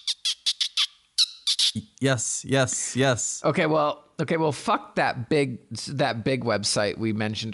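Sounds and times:
voice imitating a dolphin with high squeaky chirps: 0.0 - 1.9
speech: 1.8 - 7.5.

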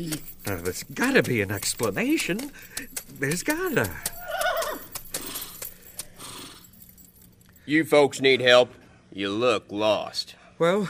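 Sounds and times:
speech: 0.0 - 4.2, 7.7 - 10.8
horse hooves clopping on a hard surface: 0.0 - 6.6
horse pulling a buggy whinnying: 4.1 - 5.6.

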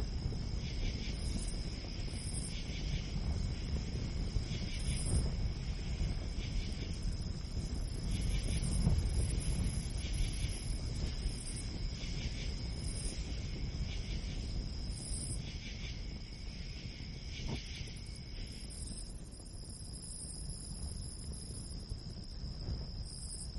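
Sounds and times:
wind in a pine forest: 0.0 - 23.5.

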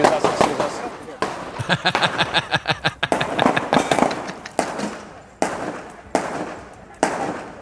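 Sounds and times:
gunshots outdoors: 0.0 - 2.3, 3.0 - 7.6
laughter: 1.5 - 4.7
speech: 1.7 - 2.9.

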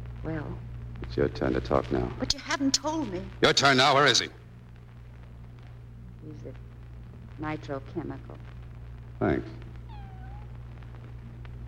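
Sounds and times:
steady low mechanical hum: 0.0 - 11.6
speech: 0.2 - 4.4, 6.2 - 6.7, 7.4 - 8.6, 9.2 - 9.6
cat meowing: 9.8 - 10.5.

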